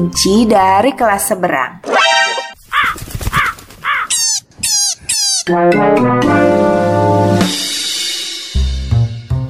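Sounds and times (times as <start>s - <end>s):
speech: 0.0s - 2.1s, 5.5s - 7.7s
crow cawing: 2.7s - 4.2s.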